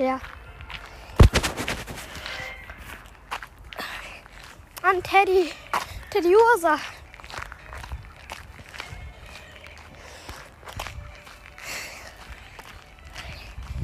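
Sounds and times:
speech: 0:00.0 - 0:00.4, 0:04.8 - 0:06.9
footsteps walking along a path: 0:00.0 - 0:13.8
rustling: 0:01.2 - 0:02.6.

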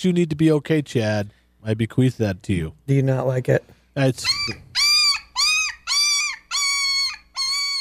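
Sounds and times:
speech: 0:00.0 - 0:04.6
puppy whining: 0:04.2 - 0:07.7.

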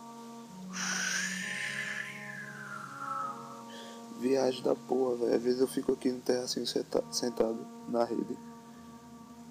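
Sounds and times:
wind gusting with whistling tone: 0:00.7 - 0:04.3
speech: 0:04.2 - 0:08.5.

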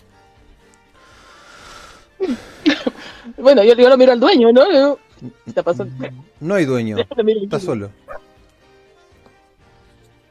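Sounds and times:
laughter: 0:02.2 - 0:03.3, 0:06.8 - 0:07.4
speech: 0:02.2 - 0:08.0
single short sharp dog bark: 0:08.0 - 0:08.4.

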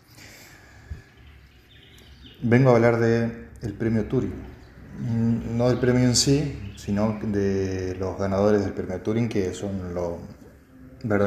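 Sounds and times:
faint birdsong chirps and thin high tweets: 0:00.0 - 0:11.2
speech: 0:02.4 - 0:10.4, 0:11.0 - 0:11.2.

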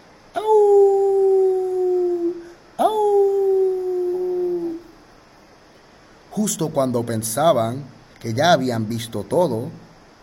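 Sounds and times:
children imitating wolf howls at a zoo: 0:00.4 - 0:04.9
speech: 0:06.4 - 0:09.8.

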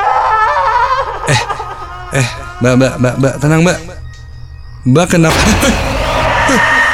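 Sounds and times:
woman crying hysterically: 0:00.0 - 0:03.4
speech: 0:02.1 - 0:03.9, 0:04.8 - 0:05.9.

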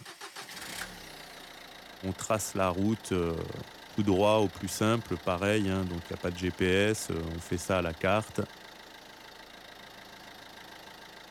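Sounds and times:
Volkswagen Golf 2 car engine cranking, starting and idling: 0:00.0 - 0:11.2
speech: 0:02.0 - 0:08.6.

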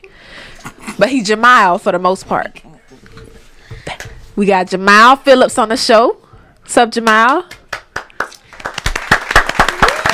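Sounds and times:
speech: 0:01.0 - 0:02.7, 0:04.4 - 0:07.6
hand claps and applause from a small group: 0:07.0 - 0:10.1.

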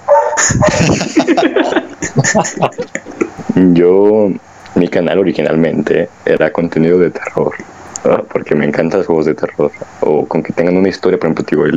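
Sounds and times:
dogs barking: 0:00.0 - 0:03.5
laughter: 0:00.4 - 0:03.8, 0:07.1 - 0:07.7
speech: 0:00.8 - 0:01.2, 0:02.2 - 0:11.7.

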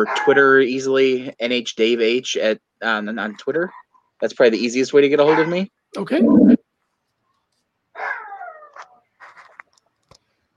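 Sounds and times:
speech: 0:00.0 - 0:06.6
small chihuahua yelping and yapping: 0:08.0 - 0:08.8.

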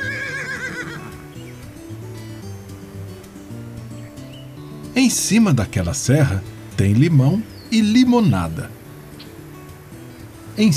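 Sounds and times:
mare neighing: 0:00.0 - 0:01.3
low musical notes: 0:00.0 - 0:10.7
speech: 0:05.0 - 0:08.8, 0:10.6 - 0:10.7.

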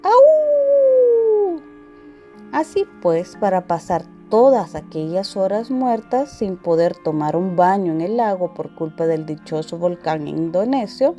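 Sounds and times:
human voice imitating a werewolf howl as a greeting: 0:00.0 - 0:01.7
speech: 0:02.6 - 0:11.1.

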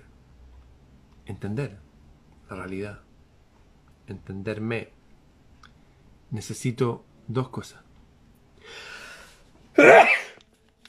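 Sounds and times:
speech: 0:01.3 - 0:01.9, 0:02.5 - 0:03.1, 0:04.1 - 0:05.0, 0:06.3 - 0:07.8
sneeze: 0:09.8 - 0:10.4.

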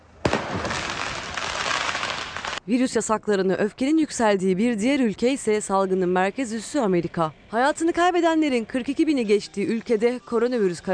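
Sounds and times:
sharp firework blast during street riot: 0:00.2 - 0:02.6
speech: 0:02.6 - 0:10.9.

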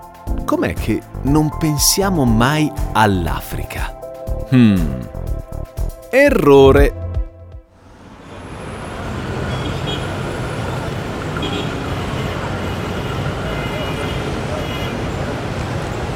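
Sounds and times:
speech: 0:00.5 - 0:05.2, 0:06.1 - 0:07.0
busy city road traffic roar of engines and passing vehicles: 0:07.7 - 0:16.1.

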